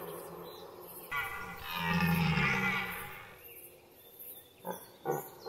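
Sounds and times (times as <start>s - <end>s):
red deer calling: 1.1s - 3.4s.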